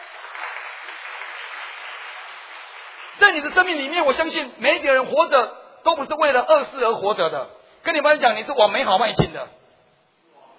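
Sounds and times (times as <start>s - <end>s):
crowd applauding: 0.0s - 4.0s
speech: 3.2s - 9.6s.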